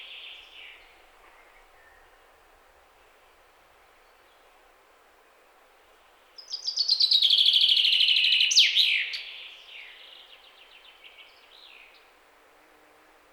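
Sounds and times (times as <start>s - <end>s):
common chaffinch Fringilla coelebs singing: 6.4s - 12.1s.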